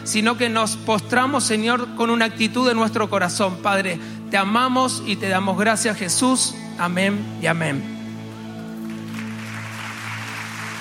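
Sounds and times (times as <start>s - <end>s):
speech: 0.1s - 8.0s
church audience applauding: 8.5s - 10.7s.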